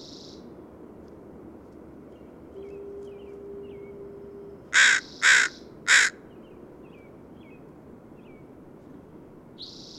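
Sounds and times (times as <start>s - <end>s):
faint steady background hiss: 0.0s - 9.9s
bird harsh caws: 4.7s - 6.2s.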